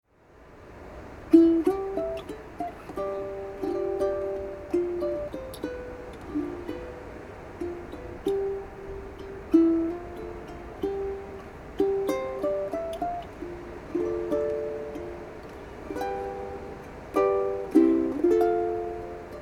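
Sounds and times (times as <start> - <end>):
waves: 0.2 - 19.3
ukulele playing: 0.7 - 19.3.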